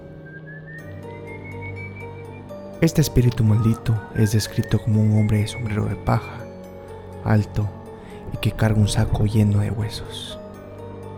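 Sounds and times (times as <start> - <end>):
eerie drawn-out whistle rising in pitch: 0.0 - 6.4
speech: 2.8 - 6.4, 7.2 - 10.4.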